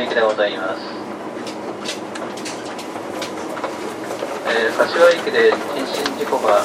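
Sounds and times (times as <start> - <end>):
speech: 0.0 - 1.1, 4.5 - 6.6
limited express train rumbling on rails heard from inside the carriage: 0.0 - 6.6.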